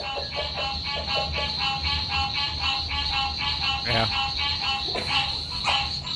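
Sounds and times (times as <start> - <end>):
frogs croaking in a backyard at night: 0.0 - 6.1
high insect-like drone: 0.0 - 6.1.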